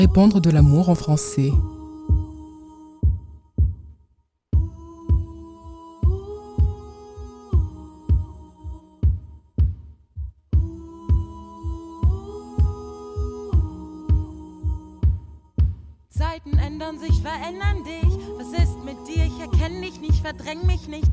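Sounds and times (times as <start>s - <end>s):
speech: 0.0s - 1.7s
thumping kick drum pulse in an instrumental song intro: 1.6s - 4.0s, 4.6s - 5.4s, 7.6s - 21.1s.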